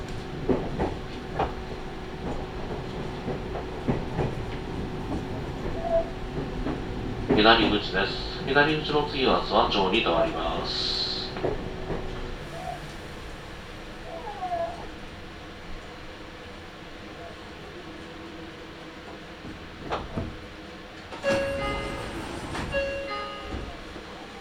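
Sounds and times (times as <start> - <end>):
rail clanks: 0.0 - 13.4, 19.4 - 24.4
limited express train running on rails: 0.0 - 24.4
speech: 7.4 - 11.7.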